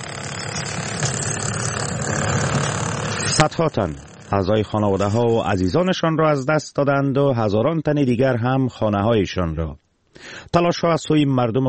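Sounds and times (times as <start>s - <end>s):
rubble-clearing heavy machinery engine running: 0.0s - 5.7s
speech: 3.4s - 11.6s.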